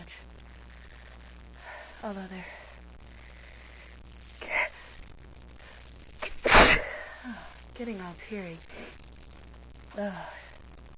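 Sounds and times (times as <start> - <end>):
speech: 2.0 - 2.6, 7.8 - 8.8, 10.0 - 10.4
person with an irritated runny nose sneezing: 6.2 - 7.4.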